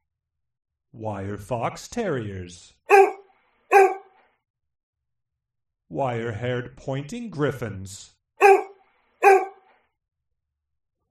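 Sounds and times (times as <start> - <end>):
speech: 0.9 - 3.0, 5.9 - 8.2
dog barking: 2.9 - 4.2, 8.4 - 9.7.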